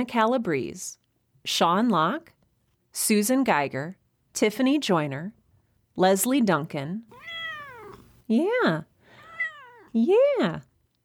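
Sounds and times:
speech: 0.0 - 5.4, 6.0 - 7.3, 8.3 - 8.9, 10.0 - 10.7
cat meowing: 7.1 - 8.2, 9.1 - 10.0.

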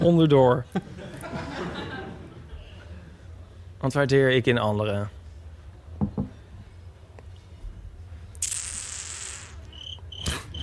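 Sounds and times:
speech: 0.0 - 0.9, 3.8 - 5.2
laughter: 0.7 - 3.2
soft knocks: 6.0 - 6.4
crickets chirping in a high-pitched trill: 9.7 - 10.6.

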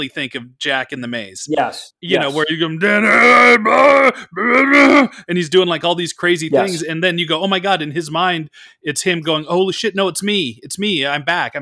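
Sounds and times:
speech: 0.0 - 11.5
person groaning: 1.5 - 5.2, 6.6 - 6.8.

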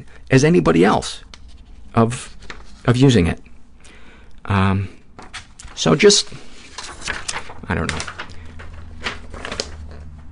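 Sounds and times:
speech: 0.0 - 1.3, 2.0 - 3.5, 4.5 - 5.0, 5.8 - 6.4, 7.7 - 8.2
paper pages being shuffled: 1.0 - 3.1, 5.2 - 10.2.

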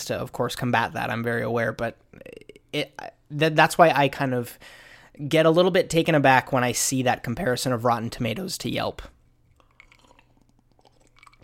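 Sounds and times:
speech: 0.0 - 9.2
person sipping limeade: 9.4 - 11.4.

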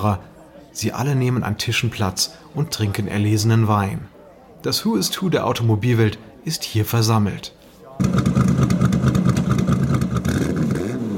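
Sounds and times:
speech: 0.0 - 8.7
Ferrari sports car engine roaring and revving: 8.0 - 11.1.

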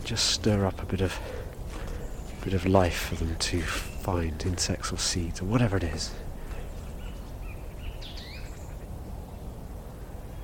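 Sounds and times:
song thrush singing from countryside trees in cold season: 0.0 - 10.4
steady low rumble of wind or outdoor noise: 0.0 - 10.4
speech: 0.1 - 1.4, 2.4 - 6.2.

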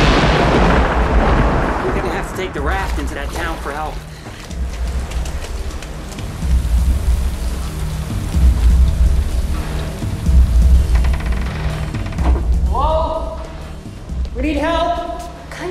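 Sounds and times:
heavy rain: 0.0 - 14.0
thunder rumbling: 0.0 - 14.8
speech: 2.5 - 4.1.

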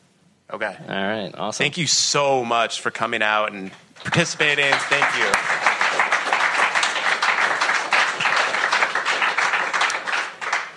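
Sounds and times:
speech: 0.5 - 5.7
live audience crowd applauding: 4.0 - 10.7.

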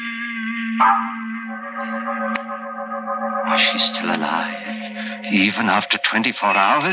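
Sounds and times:
speech: 0.8 - 1.2, 3.6 - 6.9
doorbell ringing: 0.8 - 5.0.

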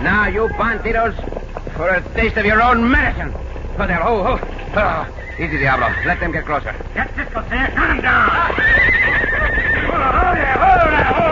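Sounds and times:
horse whinnying: 0.0 - 1.1, 4.8 - 6.8, 7.7 - 11.3
speech: 0.0 - 11.3
steady rumble of noise: 0.0 - 11.3.

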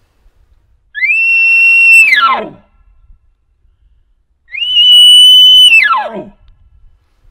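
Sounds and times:
angry elk bugle screams blown on a reed call: 1.0 - 2.6, 4.5 - 6.4.

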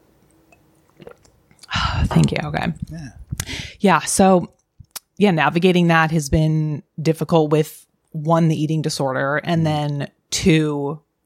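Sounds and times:
person sipping water: 0.5 - 3.6
faint mouth sounds: 0.9 - 3.5
speech: 2.1 - 3.2, 3.8 - 4.6, 5.2 - 11.2.

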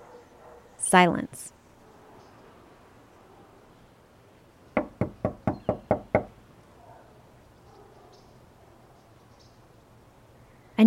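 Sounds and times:
speech: 0.9 - 1.6
firm knocking on a door: 4.8 - 6.4.

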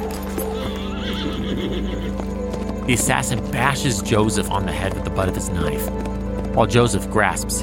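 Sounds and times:
horse hooves clip-clopping: 0.0 - 7.6
horse whinnying: 0.4 - 2.4
speech: 2.9 - 6.0, 6.6 - 7.6.

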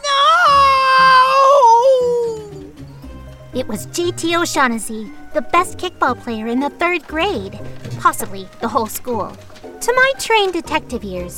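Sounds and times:
child screaming: 0.0 - 2.6
speech: 3.7 - 11.3.

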